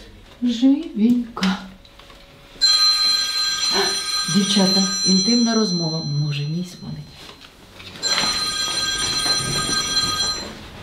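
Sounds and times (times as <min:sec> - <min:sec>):
speech: 0:00.4 - 0:01.7, 0:04.4 - 0:07.2
telephone ringing with a bright electronic tone: 0:02.6 - 0:10.8.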